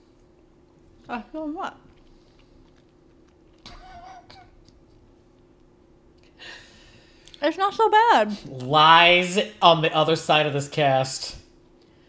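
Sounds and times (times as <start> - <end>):
faint steady hum: 0.0 - 12.0
speech: 1.1 - 1.9, 7.4 - 11.4
crunchy chewing of a salted mustard-flavored pretzel: 1.9 - 3.7.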